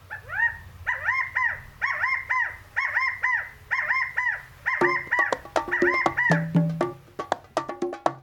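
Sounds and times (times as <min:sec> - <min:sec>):
California quail three-note rallying calls: 0:00.0 - 0:08.0
lower clucks of California quail: 0:00.0 - 0:08.0
sharp clicks of California quail: 0:00.9 - 0:06.8.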